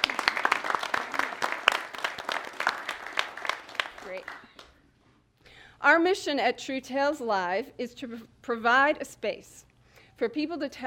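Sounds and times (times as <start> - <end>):
studio audience applause: 0.0 - 4.8
speech: 5.8 - 10.8.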